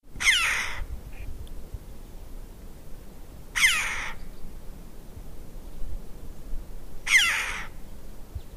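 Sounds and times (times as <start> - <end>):
low background noise: 0.0 - 8.5
red-billed chough giving loud harsh calls: 0.2 - 0.8, 3.6 - 4.2, 7.1 - 7.7.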